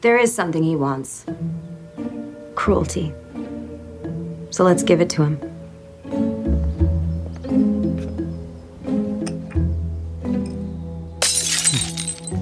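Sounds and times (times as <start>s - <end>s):
speech: 0.0s - 1.7s, 2.6s - 3.2s, 4.5s - 5.5s
steady droning tonal background: 1.2s - 12.3s
glass shattering: 11.2s - 12.4s
objects being smashed: 11.2s - 12.4s.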